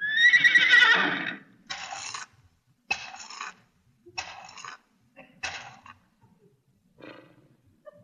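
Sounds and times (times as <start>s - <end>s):
horse whinnying: 0.0s - 1.9s.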